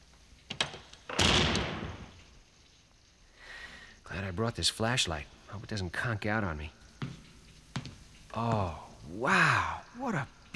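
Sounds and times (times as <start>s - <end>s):
unlocked front door swinging open with a creak: 0.5s - 2.2s
speech: 4.4s - 7.2s, 8.4s - 10.3s.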